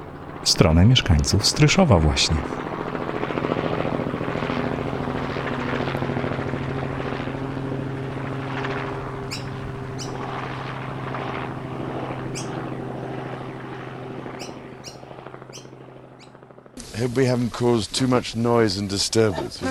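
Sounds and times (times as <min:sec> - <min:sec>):
birds chirping: 0:00.0 - 0:06.0, 0:09.2 - 0:10.3, 0:12.2 - 0:16.4
helicopter landing in a field: 0:00.0 - 0:16.9
speech: 0:00.4 - 0:02.7, 0:17.0 - 0:19.6.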